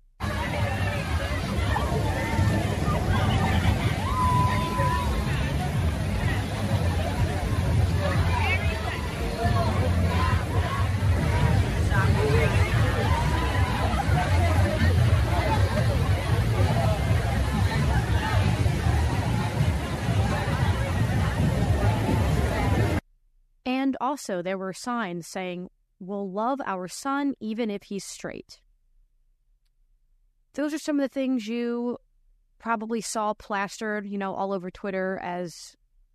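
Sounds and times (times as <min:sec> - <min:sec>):
crowd of many voices chattering at an outdoor water party: 0:00.2 - 0:23.0
speech: 0:24.0 - 0:28.6, 0:30.6 - 0:32.0, 0:32.6 - 0:35.8.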